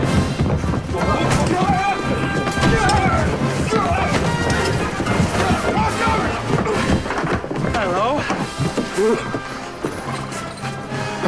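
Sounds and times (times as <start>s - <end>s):
general movement: 0.0s - 11.2s
horse hooves clip-clopping: 0.0s - 11.2s
voices: 0.9s - 9.4s.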